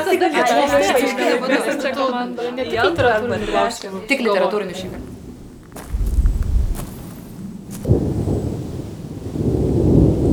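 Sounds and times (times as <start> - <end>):
laughter: 0.0 - 5.0
speech: 0.1 - 5.2
faint crackling noise: 2.6 - 8.4
distant thunder rumbling: 2.6 - 10.3.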